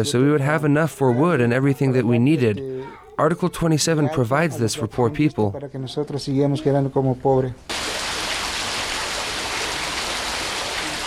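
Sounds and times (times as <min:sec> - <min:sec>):
speech: 0:00.0 - 0:07.8
heavy downpour of rain: 0:07.7 - 0:11.0.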